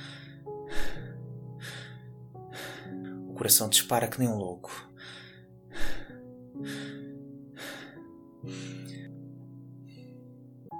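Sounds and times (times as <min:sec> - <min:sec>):
heavy panting breaths of an exhausted climber ascending a slope: 0:00.0 - 0:03.3, 0:04.7 - 0:09.2
low sustained musical drone: 0:00.0 - 0:10.7
speech: 0:03.4 - 0:04.9.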